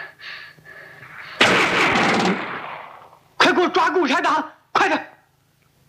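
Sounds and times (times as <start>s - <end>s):
single loud gunshot in a fight scene: 1.1s - 3.2s
speech: 4.0s - 5.1s.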